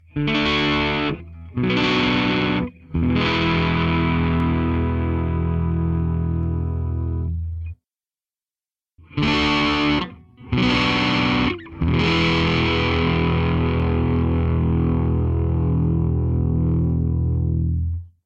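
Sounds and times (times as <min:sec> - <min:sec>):
guitar chords played with gain on neck pickup: 0:00.0 - 0:07.8, 0:09.0 - 0:18.1.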